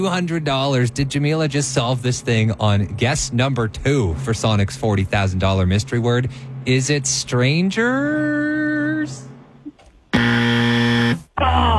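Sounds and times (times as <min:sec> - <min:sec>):
speech: 0:00.0 - 0:09.3
game show buzzer sounding after a wrong answer: 0:10.1 - 0:11.3.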